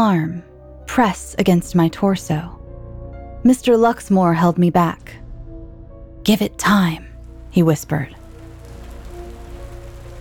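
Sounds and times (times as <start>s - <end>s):
speech: 0.0s - 2.6s, 3.4s - 5.2s, 6.2s - 8.2s
steady rain patter on a surface: 7.1s - 10.2s.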